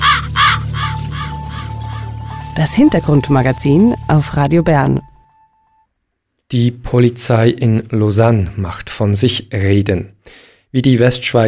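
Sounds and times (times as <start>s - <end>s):
raven cawing in a radio jingle: 0.0s - 2.6s
soft steady low tone: 2.4s - 8.0s
speech: 2.6s - 5.1s, 6.5s - 11.4s.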